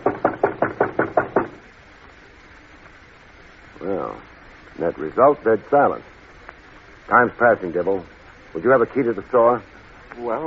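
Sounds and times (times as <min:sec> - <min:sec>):
knocks banging on a wooden door: 0:00.0 - 0:01.6
speech: 0:04.0 - 0:06.1, 0:07.1 - 0:10.4.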